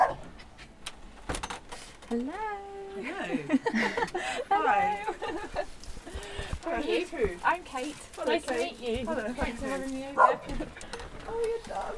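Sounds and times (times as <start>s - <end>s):
two West Highland Terriers barking at a visitor in a West London home: 0.0s - 0.3s, 10.2s - 10.5s
speech: 2.1s - 5.7s, 6.6s - 11.9s
laughter: 3.0s - 6.3s.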